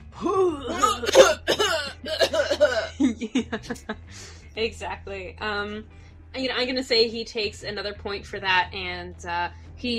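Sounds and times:
person imitating throat clearing with strained voiced rasps and hacks: 0:00.1 - 0:03.0
laughter: 0:03.0 - 0:04.2
speech: 0:03.2 - 0:09.9.

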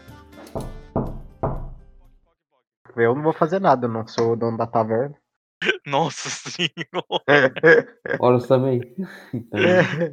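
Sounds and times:
heavy knocks on a door: 0:00.6 - 0:01.9
speech: 0:03.0 - 0:10.1
laughter: 0:05.6 - 0:08.5, 0:09.4 - 0:10.1.

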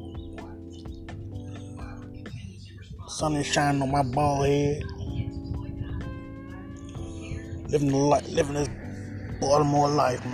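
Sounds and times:
birds chirping outdoors: 0:00.0 - 0:10.3
steady low hum: 0:00.0 - 0:10.3
speech: 0:03.1 - 0:04.9, 0:07.7 - 0:08.8, 0:09.4 - 0:10.3.

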